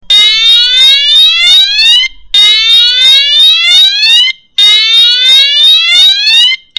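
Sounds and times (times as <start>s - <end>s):
air raid siren: 0.1s - 6.6s.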